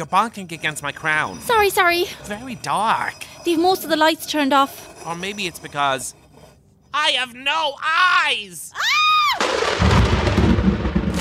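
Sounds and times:
speech: 0.0 - 6.2, 6.9 - 8.9
sharp loud crack of thunder with lightning: 9.4 - 11.1
dense rumbling roar of thunder: 9.7 - 11.1.

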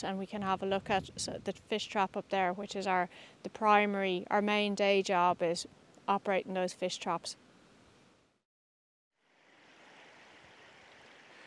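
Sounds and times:
speech: 0.0 - 7.4
water rushing through the millrace at Burrishill connecting two lochs: 9.3 - 11.4.

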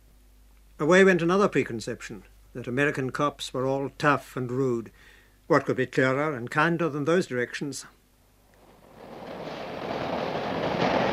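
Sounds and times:
speech: 0.8 - 8.0
subway train with modernized cars on an old line rumbling on rails: 8.7 - 11.1.

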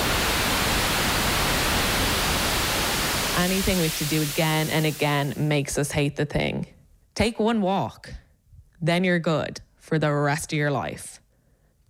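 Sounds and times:
white noise static hiss: 0.0 - 5.7
speech: 3.4 - 8.2, 8.8 - 11.2.

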